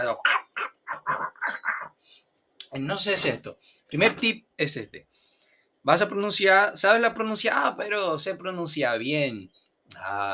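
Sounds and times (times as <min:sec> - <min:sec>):
speech: 0:00.0 - 0:00.4, 0:02.7 - 0:05.2, 0:05.8 - 0:10.3
voice imitating a dog's guttural growl: 0:00.2 - 0:02.0.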